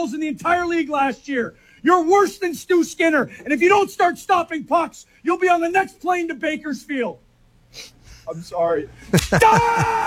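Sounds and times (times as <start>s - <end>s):
man speaking tensely: 0.0s - 7.2s
speech: 0.0s - 10.0s
laughter: 9.1s - 10.0s
slap across the face: 9.2s - 9.4s.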